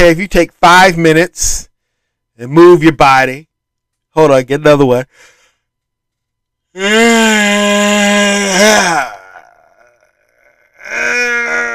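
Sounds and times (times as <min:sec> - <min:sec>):
speech: 0:00.0 - 0:01.7, 0:02.4 - 0:03.5, 0:04.2 - 0:05.3, 0:06.8 - 0:09.2
breathy exhale: 0:05.1 - 0:05.7
exaggerated deliberate vocal yawn: 0:06.8 - 0:11.7.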